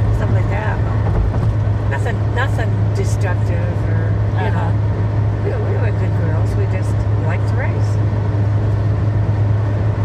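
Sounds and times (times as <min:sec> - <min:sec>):
broad road noise of a tour bus: 0:00.0 - 0:10.0
tour bus engine drone: 0:00.0 - 0:10.0.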